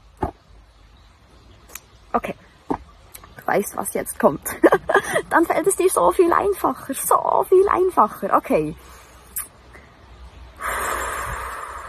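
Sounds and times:
speech: 2.1s - 2.5s, 3.5s - 9.0s
deep audible breath: 10.6s - 11.8s.

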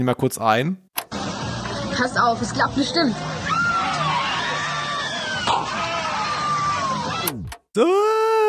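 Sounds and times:
speech: 0.0s - 1.2s, 2.0s - 3.4s, 7.8s - 8.4s
crowd of roller coaster riders screaming: 3.2s - 8.4s.

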